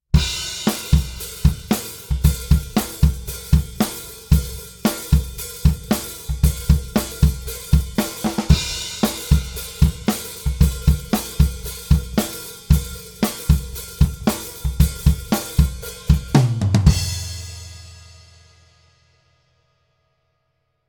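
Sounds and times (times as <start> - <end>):
damped snare drum: 0.1 - 18.8
hi-hat ride pattern: 0.2 - 17.0.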